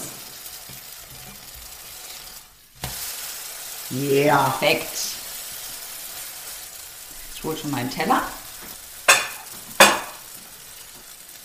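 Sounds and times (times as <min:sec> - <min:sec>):
food sizzling in a hot frying pan as it is flipped: 0:00.0 - 0:11.4
speech: 0:03.9 - 0:05.2, 0:07.4 - 0:08.4.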